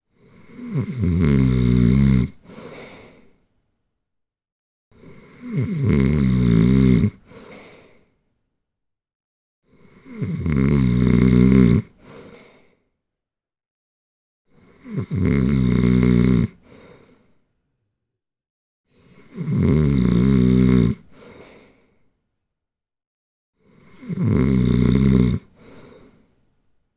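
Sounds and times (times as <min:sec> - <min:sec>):
37-year-old woman snoring: 0:00.1 - 0:03.4, 0:05.0 - 0:08.1, 0:09.6 - 0:12.8, 0:14.5 - 0:17.2, 0:18.9 - 0:21.9, 0:23.6 - 0:26.2.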